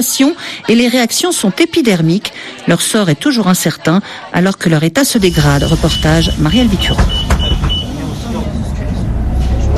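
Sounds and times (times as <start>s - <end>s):
speech: 0.0s - 7.5s
road traffic roar of engines and tyres crossing a busy city bridge in Vilnius: 5.2s - 9.7s.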